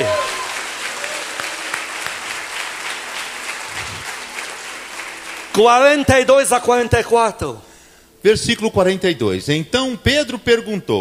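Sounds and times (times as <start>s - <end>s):
audience applauding: 0.0s - 6.1s
speech: 5.6s - 10.9s.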